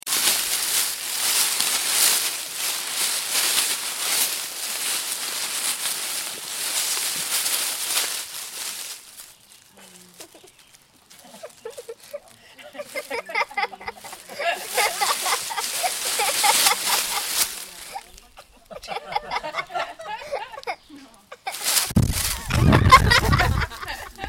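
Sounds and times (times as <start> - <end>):
leaves rustling: 0.0 - 24.2
person giggling: 11.2 - 17.3, 17.9 - 21.7, 22.3 - 24.2.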